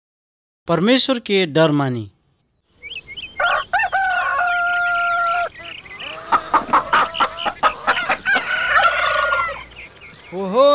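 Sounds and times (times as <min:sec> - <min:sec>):
speech: 0:00.7 - 0:02.2
rooster crowing: 0:03.4 - 0:09.7.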